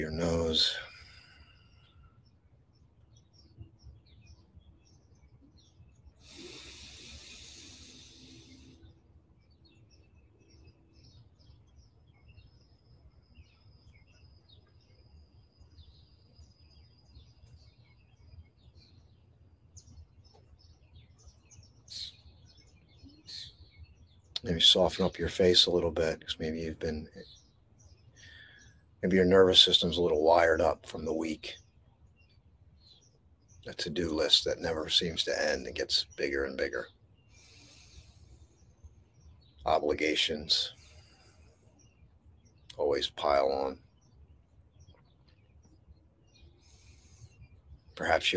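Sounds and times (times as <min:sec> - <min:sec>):
speech: 0:00.0 - 0:00.9, 0:24.5 - 0:27.4, 0:29.0 - 0:31.6, 0:33.6 - 0:37.0, 0:39.6 - 0:40.8, 0:42.8 - 0:43.8, 0:48.0 - 0:48.3
many small birds chirping and tweeting outdoors: 0:00.0 - 0:48.3
steady insect hum: 0:00.0 - 0:48.3.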